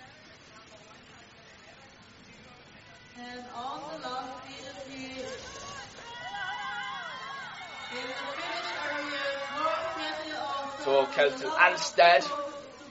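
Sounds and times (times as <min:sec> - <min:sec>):
crowd of Norwegian spectators cheering and whooping at a ski race: 0:05.2 - 0:11.8
excited shouts of spectators at a ski race: 0:05.5 - 0:11.9
speech: 0:10.9 - 0:12.5.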